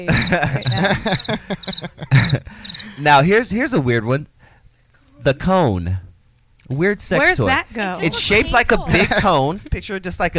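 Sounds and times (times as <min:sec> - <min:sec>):
laughter: 0:00.0 - 0:03.0, 0:08.1 - 0:09.8
speech: 0:00.0 - 0:04.4, 0:05.2 - 0:06.1, 0:06.7 - 0:10.3
crickets chirping: 0:00.1 - 0:03.0.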